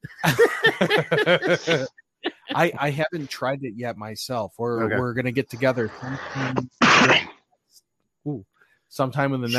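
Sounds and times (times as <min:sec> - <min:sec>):
laughter: 0:00.0 - 0:06.6, 0:09.1 - 0:09.5
speech: 0:00.2 - 0:02.0, 0:02.6 - 0:07.3, 0:08.2 - 0:09.5
sneeze: 0:06.5 - 0:07.3.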